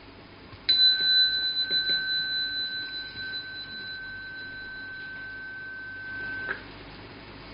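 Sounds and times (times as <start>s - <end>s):
single bell struck and ringing: 0.7s - 6.7s.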